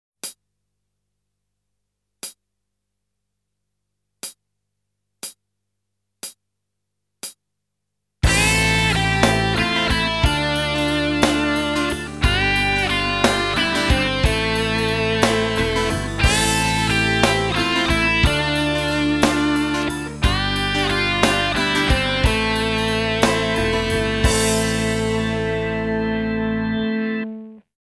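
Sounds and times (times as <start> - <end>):
natural minor scale: 8.5 - 26.3.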